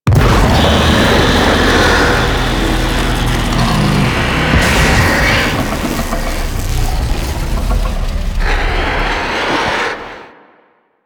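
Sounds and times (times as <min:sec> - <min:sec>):
sun monster hit impact: 0:00.0 - 0:10.2.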